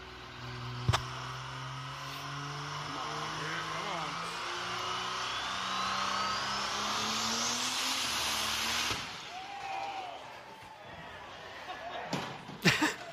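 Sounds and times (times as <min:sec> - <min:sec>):
car engine screaming at high revs with excessive boost: 0:00.0 - 0:09.6
car engine blowing apart from excessive boost: 0:04.8 - 0:09.5
laughter: 0:10.8 - 0:13.1.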